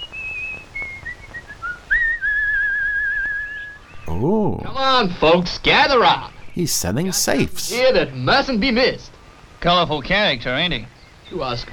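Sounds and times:
person whistling a wandering melody: 0.8 - 3.8
speech: 4.2 - 11.7.

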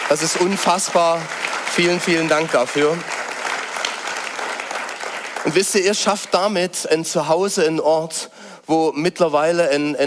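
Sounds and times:
audience applause: 0.0 - 6.5
speech: 0.1 - 3.2, 5.4 - 10.0.

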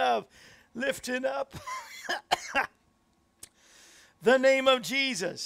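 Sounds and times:
speech: 0.2 - 2.8, 4.2 - 5.4
rough harsh coughs: 1.5 - 2.8.

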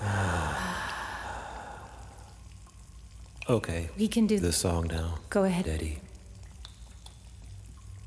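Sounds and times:
person breathing in and out deeply during a guided breathing exercise: 0.0 - 2.4
speech: 3.5 - 6.1.

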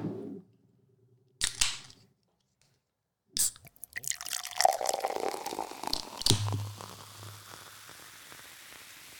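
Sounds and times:
low hum: 0.0 - 1.4
beer can tab cracking open: 3.4 - 9.0
beer fizzing and splashing as it's poured: 3.7 - 9.1.

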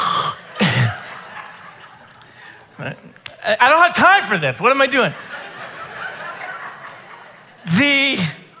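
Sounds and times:
person coughing: 0.0 - 1.0
laughter: 0.3 - 3.1, 4.7 - 8.5
speech: 2.8 - 5.3, 7.8 - 8.4.

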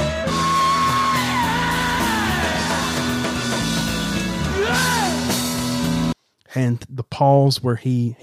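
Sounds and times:
rock singer screaming in a live recording: 0.0 - 3.2, 4.3 - 5.5
loud dense rock band playing live: 0.0 - 6.2
speech: 6.6 - 8.2.

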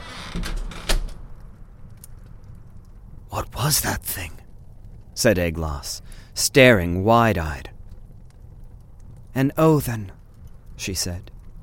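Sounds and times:
door pushed shut with a soft scrape: 0.0 - 1.2
faint low rumble: 0.0 - 11.6
speech: 0.3 - 0.6, 3.7 - 4.4, 5.2 - 7.7, 9.3 - 10.2, 10.8 - 11.3.

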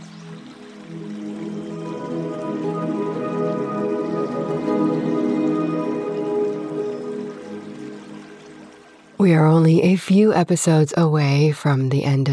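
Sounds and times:
river water rushing and burbling: 0.0 - 9.3
speech: 9.2 - 12.3.

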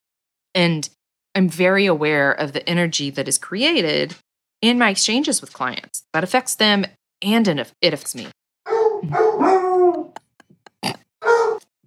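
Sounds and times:
speech: 0.6 - 8.4, 9.0 - 10.1
hound barking: 8.6 - 10.1, 11.2 - 11.7
hound howling: 8.7 - 10.2, 11.2 - 11.7.

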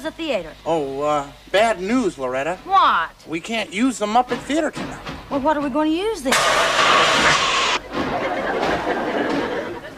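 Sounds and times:
speech: 0.0 - 9.0
steam hissing at a train station: 6.3 - 7.8
laughter: 7.8 - 9.9.

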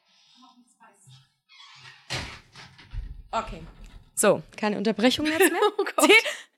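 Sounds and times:
door creaking open to let a cat out: 1.5 - 4.1
door shutting with a solid knock: 1.8 - 4.1
speech: 3.4 - 6.4
laughter: 5.2 - 6.5.

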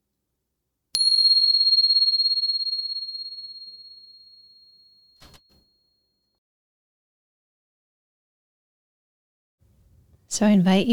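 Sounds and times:
meditation bell ringing: 1.0 - 5.4
speech: 10.3 - 10.9.

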